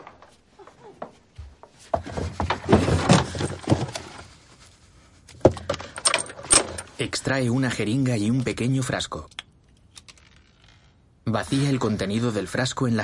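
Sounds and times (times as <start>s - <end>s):
rummaging through drawers in a bedroom: 1.9s - 4.3s, 5.3s - 7.0s
speech: 7.0s - 9.4s, 11.3s - 13.0s.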